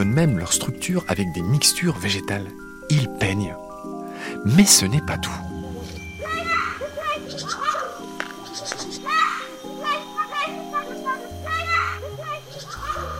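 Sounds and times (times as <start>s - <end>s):
speech: 0.0s - 3.6s, 4.2s - 5.5s
steady musical drone: 4.6s - 11.5s
MacGregor's bowerbird mimicking children playing: 6.2s - 13.1s.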